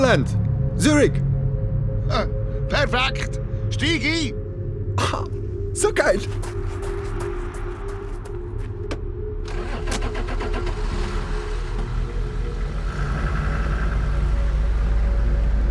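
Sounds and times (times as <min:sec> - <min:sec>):
speech: 0:00.1 - 0:01.3, 0:02.1 - 0:04.4, 0:05.0 - 0:07.0
car engine starting and running: 0:06.7 - 0:15.6.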